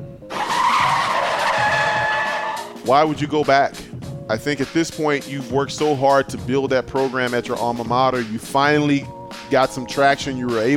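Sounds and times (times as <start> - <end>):
car tire screech of skidding brakes: 0.3 - 2.9
speech: 2.9 - 10.7.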